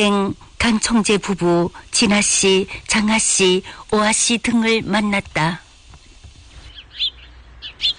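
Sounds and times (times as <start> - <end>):
speech: 0.0 - 5.6
soft low hum: 0.0 - 7.9
birds chirping outside a temple among flowers and trees: 6.0 - 7.9.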